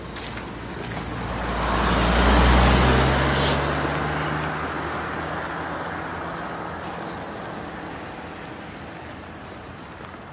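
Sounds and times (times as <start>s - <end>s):
heavy road traffic passing by: 0.0s - 10.3s
large vehicle passing: 0.3s - 10.1s.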